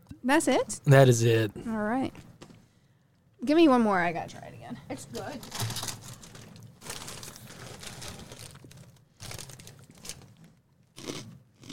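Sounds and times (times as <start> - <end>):
speech: 0.2 - 2.3, 3.4 - 5.9
rolled tortilla chip stick being bitten and chewed: 5.8 - 11.7.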